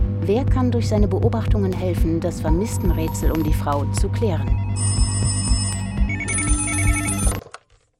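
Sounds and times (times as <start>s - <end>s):
speech: 0.3s - 5.5s
several telephones ringing with electronic trills: 4.6s - 7.4s.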